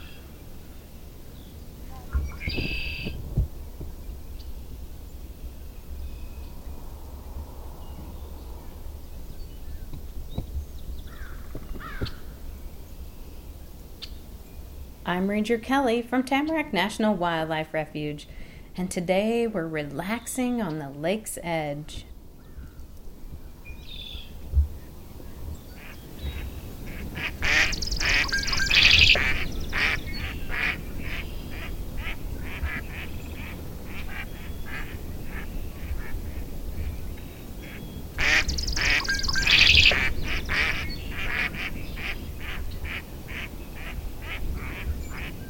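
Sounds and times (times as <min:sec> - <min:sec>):
steady outdoor noise: 0:00.0 - 0:45.4
speech: 0:15.1 - 0:22.1
mallard ducks quacking in rapid descending calls: 0:25.8 - 0:37.0, 0:37.6 - 0:45.4.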